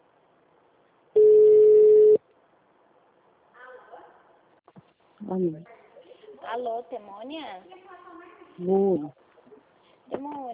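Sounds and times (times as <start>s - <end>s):
telephone call tone beep: 1.2s - 2.2s
speech: 5.3s - 5.8s, 6.5s - 7.8s, 8.6s - 9.2s, 10.2s - 10.5s.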